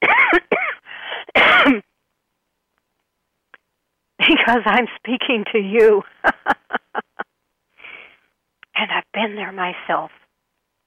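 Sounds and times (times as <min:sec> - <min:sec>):
loud harsh coughs with a quieter rasp: 0:00.0 - 0:00.8, 0:01.4 - 0:01.8
speech: 0:01.6 - 0:01.9, 0:04.5 - 0:06.6, 0:09.2 - 0:10.2
laughter: 0:06.0 - 0:07.2.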